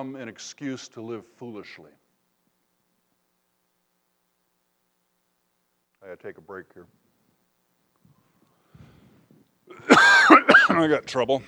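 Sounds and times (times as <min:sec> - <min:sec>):
speech: 0:00.0 - 0:02.0, 0:06.0 - 0:07.0, 0:09.7 - 0:11.4
harsh coughing fit: 0:09.7 - 0:11.0.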